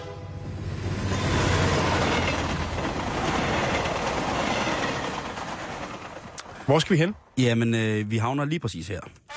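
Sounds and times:
train rumbling along the rails: 0:00.0 - 0:08.3
train wheels clattering: 0:01.0 - 0:06.9
speech: 0:06.7 - 0:09.2.

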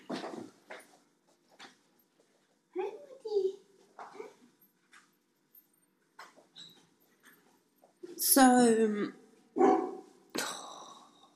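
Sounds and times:
speech: 0:08.3 - 0:09.2
neighbour's dog barking: 0:09.6 - 0:10.1.

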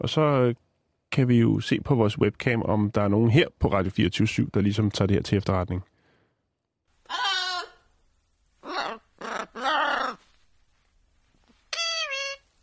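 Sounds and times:
speech: 0:00.0 - 0:05.9
parrot squawking in drawn-out bleating calls: 0:07.1 - 0:07.9, 0:08.6 - 0:10.2, 0:11.7 - 0:12.5.

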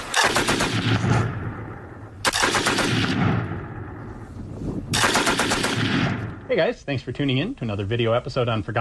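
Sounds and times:
Madsen light machine gun firing bursts: 0:00.1 - 0:01.0, 0:02.3 - 0:03.1, 0:04.9 - 0:05.9
speech: 0:06.5 - 0:08.8.

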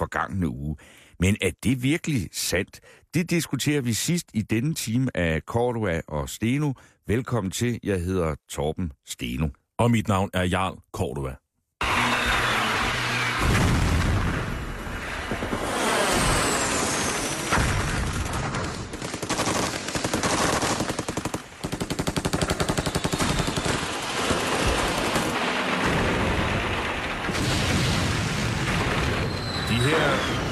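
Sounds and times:
speech: 0:00.1 - 0:12.0
explosions in archival footage: 0:11.8 - 0:30.5
rapid gunfire in archival footage: 0:15.2 - 0:29.2.

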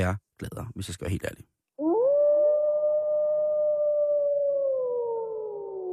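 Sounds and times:
speech: 0:00.0 - 0:01.5
wolf howling: 0:01.8 - 0:05.9.

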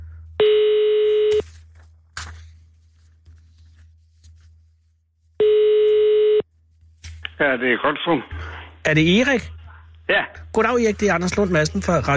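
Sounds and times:
ringback tone on a phone line during a call to a home: 0:00.4 - 0:01.4, 0:05.4 - 0:06.4
speech: 0:07.4 - 0:12.1.

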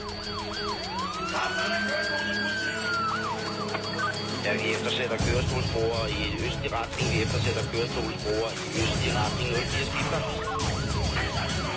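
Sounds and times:
police siren wailing in a police news jingle: 0:00.0 - 0:11.7
speech: 0:01.4 - 0:02.6, 0:04.4 - 0:10.7.

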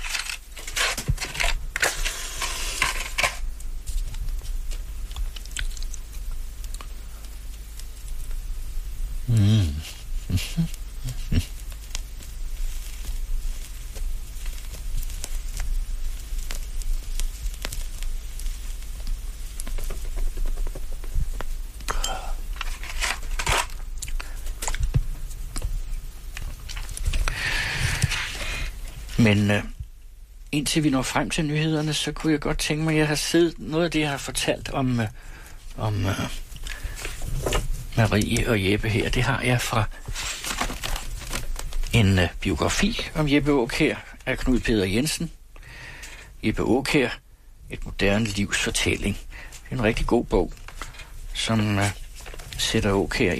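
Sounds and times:
rustling and crumpling while lighting a fire in a stove: 0:00.0 - 0:04.7, 0:22.6 - 0:25.0, 0:26.4 - 0:29.2, 0:36.2 - 0:43.1, 0:49.8 - 0:53.3
fire crackling in a stove: 0:00.0 - 0:53.3
speech: 0:29.2 - 0:29.7, 0:30.5 - 0:36.4, 0:38.0 - 0:40.0, 0:42.0 - 0:45.4, 0:46.4 - 0:50.6, 0:51.4 - 0:52.0, 0:52.6 - 0:53.3.

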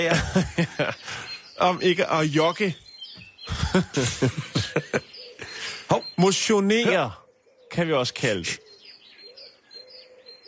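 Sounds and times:
laughter: 0:00.0 - 0:01.9, 0:03.4 - 0:06.0
speech: 0:00.0 - 0:02.8, 0:03.7 - 0:05.0, 0:06.2 - 0:08.6
bird calling with high whistled notes: 0:00.0 - 0:10.4.

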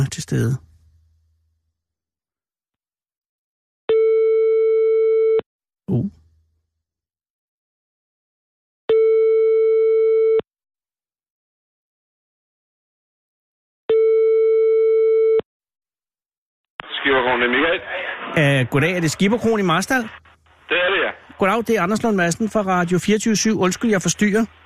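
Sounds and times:
speech: 0:00.0 - 0:00.7, 0:05.9 - 0:06.2, 0:17.0 - 0:24.6
telephone ringback tone of an outgoing call: 0:03.9 - 0:05.4, 0:08.9 - 0:10.4, 0:13.9 - 0:15.4.

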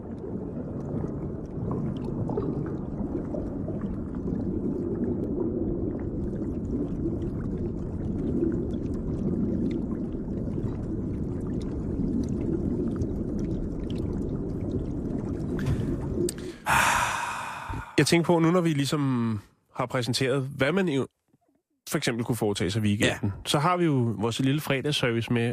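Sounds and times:
underwater low rumble: 0:00.0 - 0:18.4
soft underwater bubbling: 0:00.0 - 0:18.6
speech: 0:18.0 - 0:21.1, 0:21.9 - 0:25.5.

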